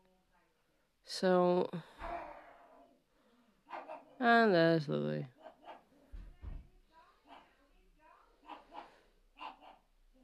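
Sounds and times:
speech: 0:01.1 - 0:02.0, 0:04.2 - 0:05.4
pug barking: 0:03.7 - 0:04.2, 0:07.2 - 0:07.6, 0:08.4 - 0:09.9.

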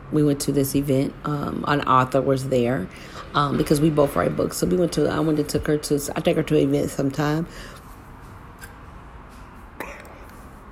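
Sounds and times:
speech: 0:00.1 - 0:07.8
quiet noise: 0:00.9 - 0:10.7
single short sharp cough: 0:09.8 - 0:10.2.

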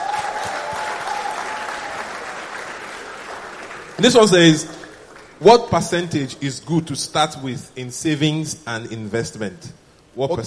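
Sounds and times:
audience applause: 0:00.0 - 0:05.5
speech: 0:04.0 - 0:10.4.

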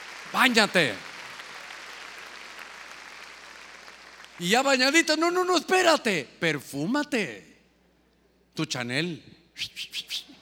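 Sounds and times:
audience clapping loudly: 0:00.0 - 0:04.9
speech: 0:00.3 - 0:01.1, 0:04.4 - 0:07.5, 0:08.6 - 0:10.1.

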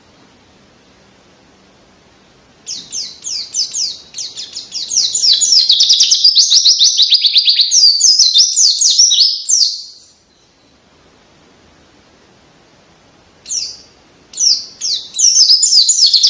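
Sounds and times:
caged white-eye singing fast twittering song: 0:02.6 - 0:10.8, 0:13.4 - 0:16.2.

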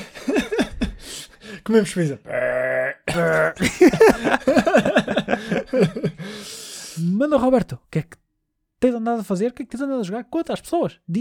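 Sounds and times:
laughter: 0:00.0 - 0:01.1, 0:03.5 - 0:06.3
speech: 0:01.7 - 0:02.4, 0:03.1 - 0:05.0, 0:07.0 - 0:08.2, 0:08.8 - 0:11.1
father burping throatily: 0:02.2 - 0:04.4.

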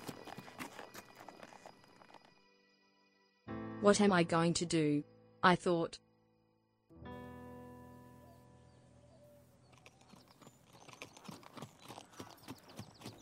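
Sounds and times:
horse hooves clip-clopping on a farm: 0:00.0 - 0:02.3, 0:09.7 - 0:13.2
speech: 0:03.8 - 0:06.0.

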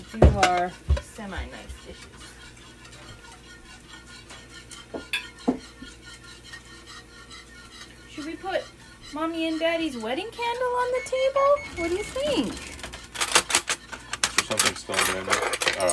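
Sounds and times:
dishes clinking and clattering as they are taken out: 0:00.0 - 0:01.7, 0:04.2 - 0:06.2, 0:11.6 - 0:15.9
low hum: 0:00.0 - 0:15.9
speech: 0:00.1 - 0:02.4, 0:08.2 - 0:12.7, 0:14.5 - 0:15.9
ceramic and cutlery knocking: 0:05.0 - 0:05.6.

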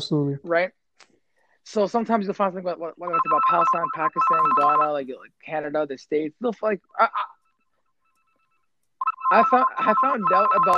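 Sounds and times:
speech: 0:00.0 - 0:00.8, 0:01.6 - 0:07.3, 0:09.3 - 0:10.7
faint electronic phone ringtone beeping: 0:03.1 - 0:04.9, 0:08.1 - 0:10.7.

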